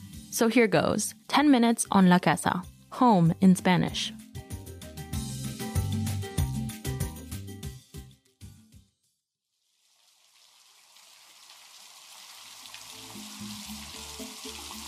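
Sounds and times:
music: 0.0 - 9.2, 12.8 - 14.8
speech: 0.4 - 4.2.

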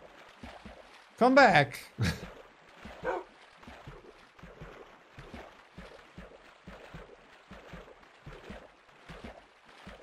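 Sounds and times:
speech: 1.2 - 2.3
dog barking and yipping: 3.0 - 3.3.

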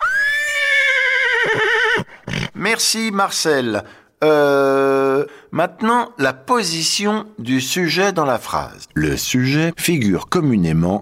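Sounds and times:
horse neighing: 0.0 - 2.6
speech: 2.6 - 10.9.

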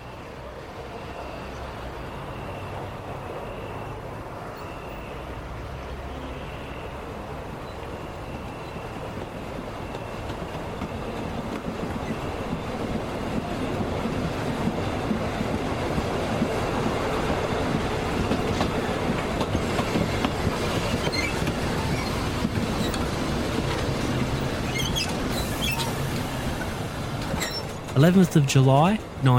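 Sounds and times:
train on the Frankston line rumbling along the railway at Kananook station in Seaford, Victoria: 0.0 - 29.3
train wheels clattering over the tracks: 7.5 - 29.2
higher metallic squeals of train on railway: 20.8 - 23.0, 24.3 - 26.0
speech: 28.0 - 29.3.

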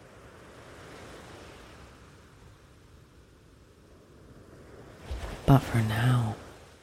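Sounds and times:
ocean waves washing on a beach: 0.0 - 6.8
speech: 5.5 - 6.4.

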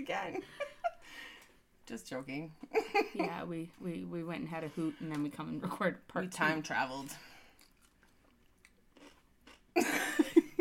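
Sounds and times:
speech: 0.0 - 1.3, 1.9 - 7.3
bite into a crunchy very sour pickle: 7.6 - 9.7.

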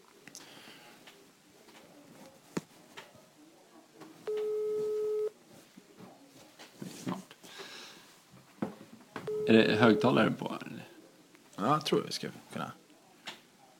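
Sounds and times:
faint noise: 0.0 - 13.7
telephone ringing tone during a call: 4.3 - 5.3, 9.3 - 10.2
speech: 9.5 - 10.6, 11.7 - 12.8.

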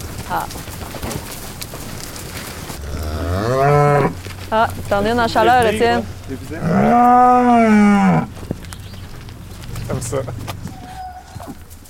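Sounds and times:
speech: 0.3 - 1.2, 3.4 - 8.3, 10.0 - 10.4
cows mooing in a field: 2.8 - 11.7.

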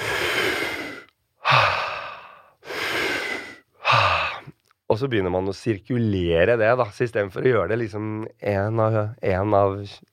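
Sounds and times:
deep forceful breaths in a breathwork technique: 0.0 - 4.5
speech: 5.0 - 10.1.

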